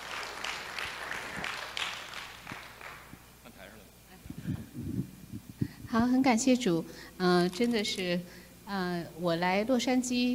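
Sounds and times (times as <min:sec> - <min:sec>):
church audience applause: 0:00.0 - 0:03.2
speech: 0:06.0 - 0:10.3.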